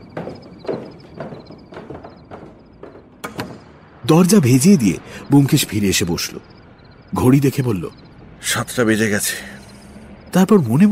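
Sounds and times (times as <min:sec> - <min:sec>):
quick footsteps going down a flight of stairs: 0:00.0 - 0:04.8
speech: 0:04.1 - 0:09.6, 0:10.3 - 0:10.9.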